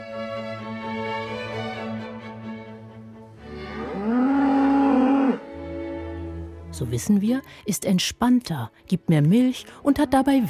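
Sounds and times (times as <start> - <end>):
classical music tones in a barn: 0.0 - 10.4
cow mooing in a barn: 3.7 - 5.5
speech: 6.8 - 10.4.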